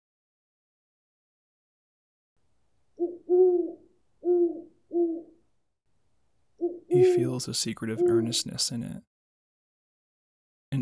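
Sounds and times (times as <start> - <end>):
owl hooting: 3.0 - 5.4, 6.6 - 8.8
speech: 6.9 - 9.1.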